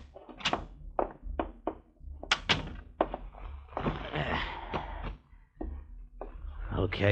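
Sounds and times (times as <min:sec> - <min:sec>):
door being opened and shut with solid thunks and clunks: 0:00.0 - 0:05.2
speech: 0:06.8 - 0:07.1.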